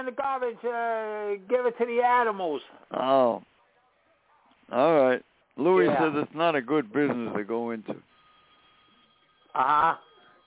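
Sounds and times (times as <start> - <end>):
speech: 0.0 - 3.5, 4.7 - 8.1, 9.5 - 10.1
telephone ringing with buzzy warbling tone: 7.2 - 10.4.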